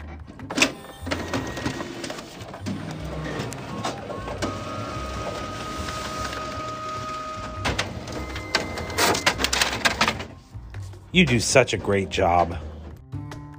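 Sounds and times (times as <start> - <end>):
school printer printing: 0.4 - 10.4
speech: 11.1 - 12.7.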